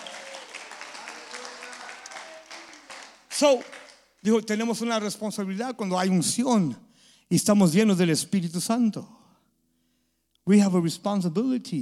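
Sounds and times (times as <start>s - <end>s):
audience clapping at a bilingual Spanish-English church service: 0.0s - 4.9s
speech: 3.4s - 9.2s, 10.4s - 11.7s.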